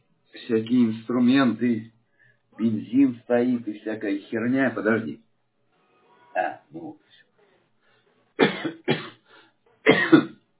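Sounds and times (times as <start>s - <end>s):
speech: 0.4s - 1.9s, 2.6s - 5.2s, 6.4s - 7.0s, 8.6s - 8.9s
person coughing harshly: 8.4s - 9.2s, 9.8s - 10.4s.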